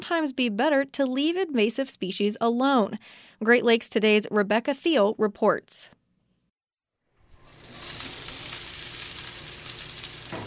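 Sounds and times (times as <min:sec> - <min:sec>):
speech: 0:00.0 - 0:06.0
food sizzling in a hot frying pan: 0:07.2 - 0:10.4.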